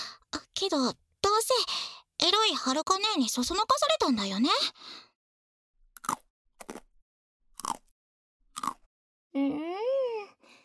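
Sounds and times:
speech: 0.6 - 5.1, 9.4 - 10.3
biting into chocolate-coated biscuit sticks: 6.0 - 7.0, 7.6 - 7.9, 8.5 - 8.9
person humming: 9.4 - 10.4.

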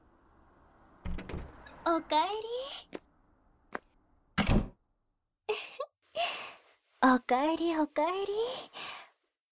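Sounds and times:
door shutting with a thud: 1.0 - 1.8
speech: 1.9 - 2.9, 7.0 - 8.8.

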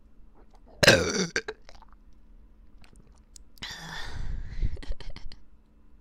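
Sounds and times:
burping: 0.8 - 2.0.

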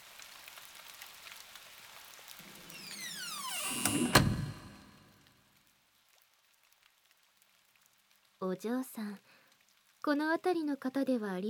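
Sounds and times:
rain pattering outside late at night: 0.0 - 2.5, 5.2 - 11.4
door sliding open with a creaking squeal: 2.4 - 5.3
speech: 8.4 - 9.4, 10.0 - 11.4.

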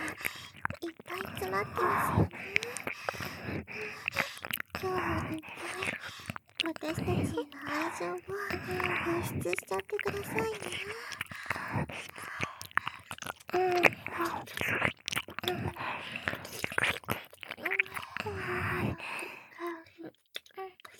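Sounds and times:
crunchy mouth clicks and smacks: 0.0 - 20.9
faint breathy murmurs or soft hums: 0.0 - 20.9
wet chewing and biting of soft cake: 0.0 - 20.9
speech: 1.6 - 2.6, 9.2 - 11.1.

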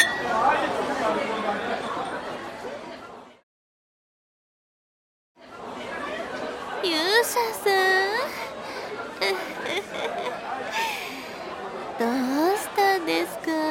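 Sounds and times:
glasses clinking in a toast: 0.0 - 0.6
lively crowd chattering and chuckling: 0.0 - 3.4, 5.4 - 13.6.

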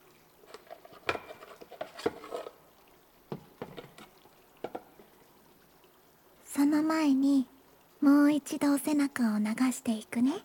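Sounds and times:
carbonated body soap fizzing and popping as it is poured: 0.0 - 5.9
speech: 6.6 - 10.4.

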